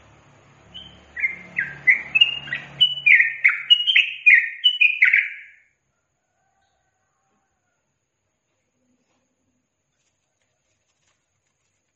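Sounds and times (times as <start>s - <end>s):
yellow-vented bulbul song in tembakan and ropel styles: 0.0s - 5.8s.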